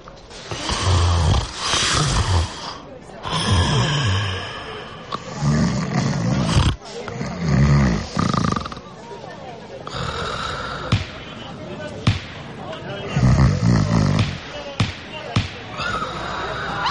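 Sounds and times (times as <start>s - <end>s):
loud snoring from a person asleep in a small airless compartment: 0.5s - 8.9s, 9.9s - 11.0s, 13.1s - 14.4s, 15.8s - 16.8s.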